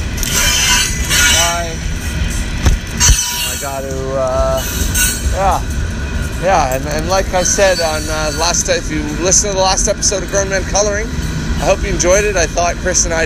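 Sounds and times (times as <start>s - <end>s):
train arriving at a station rumbling: 0.0s - 13.2s
brief tonal whines: 3.0s - 3.8s, 4.5s - 6.2s, 7.3s - 8.7s
speech: 6.4s - 13.2s.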